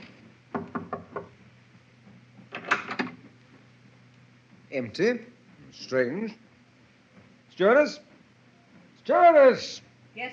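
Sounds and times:
knocking on a cabin door: 0:00.5 - 0:01.4
speech: 0:04.7 - 0:06.4, 0:07.6 - 0:08.1, 0:09.1 - 0:10.3.

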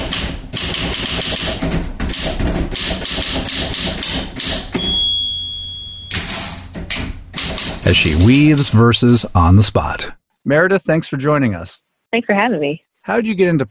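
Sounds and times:
typewriter keystrokes: 0:00.0 - 0:04.9, 0:06.1 - 0:08.7
typewriter bell ding: 0:04.5 - 0:06.7
speech: 0:07.9 - 0:13.6.

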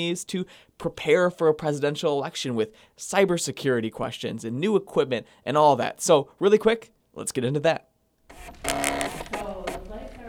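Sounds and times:
speech: 0:00.0 - 0:08.8
voting machine printing a long receipt: 0:08.3 - 0:09.8.

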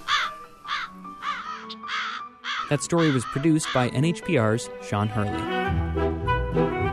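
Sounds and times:
crow cawing: 0:00.0 - 0:04.1
speech: 0:02.7 - 0:06.8.

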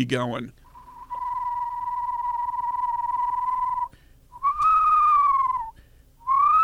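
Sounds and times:
speech: 0:00.0 - 0:00.6
person whistling an imitation of an eastern screech owl trill: 0:00.7 - 0:06.6.

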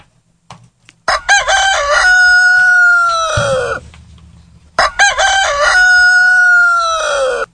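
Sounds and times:
rooster crowing: 0:01.1 - 0:03.9, 0:04.5 - 0:07.5.

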